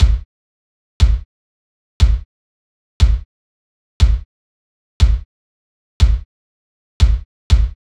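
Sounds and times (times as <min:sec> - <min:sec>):
low percussion hit drum loop: 0:00.0 - 0:00.2, 0:01.0 - 0:01.2, 0:02.0 - 0:02.2, 0:03.0 - 0:03.2, 0:04.0 - 0:04.2, 0:05.0 - 0:05.2, 0:07.0 - 0:07.8.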